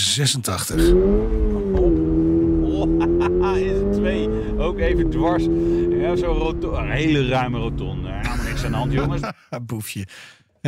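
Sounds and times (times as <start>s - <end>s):
speech: 0.2s - 2.1s, 2.8s - 10.6s
new Toyota GR86 car engine accelerating: 0.7s - 9.2s
laughter: 2.6s - 4.5s, 8.1s - 9.5s.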